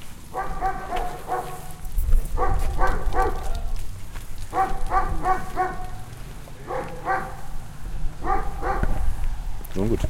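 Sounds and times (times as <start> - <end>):
electronics shop dog barking in Brandenburg: 0.3 - 3.6, 4.5 - 6.0, 6.6 - 7.5, 8.2 - 9.0.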